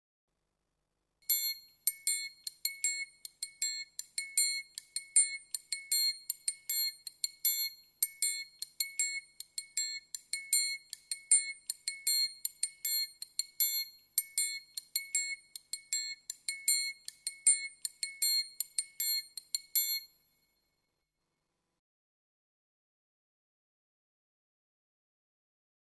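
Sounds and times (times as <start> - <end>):
triangle: 1.2 - 21.2.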